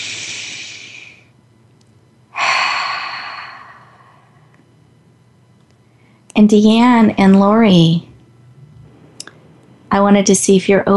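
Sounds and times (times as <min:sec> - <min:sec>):
person exhaling during a guided breathing exercise: 0:00.0 - 0:01.3, 0:02.3 - 0:04.5
person inhaling deeply during a guided breathing exercise: 0:00.0 - 0:01.3, 0:02.3 - 0:04.5
speech: 0:06.4 - 0:08.1, 0:09.9 - 0:10.9.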